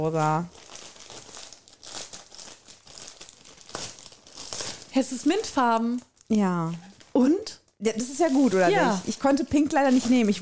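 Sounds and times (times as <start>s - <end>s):
speech: 0.0s - 0.6s, 5.0s - 10.4s
stiff glitter wrapping paper crinkling and rustling as a gift is unwrapped: 0.0s - 10.4s.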